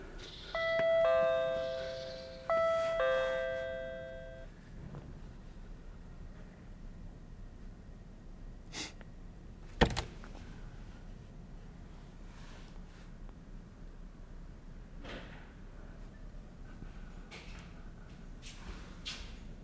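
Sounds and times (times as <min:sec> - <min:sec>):
two-tone doorbell chime: 0:00.5 - 0:04.5.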